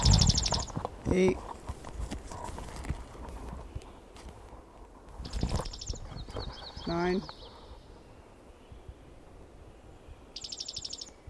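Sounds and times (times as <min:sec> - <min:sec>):
bird singing softly in a quick high trill: 0:00.0 - 0:00.8, 0:05.2 - 0:07.9, 0:10.4 - 0:11.2
speech: 0:01.1 - 0:01.5, 0:06.9 - 0:07.4.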